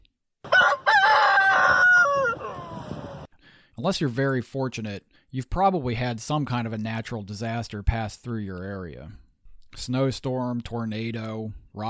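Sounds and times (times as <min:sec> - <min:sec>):
rooster crowing: 0:00.4 - 0:03.3
speech: 0:03.8 - 0:09.2, 0:09.8 - 0:11.8.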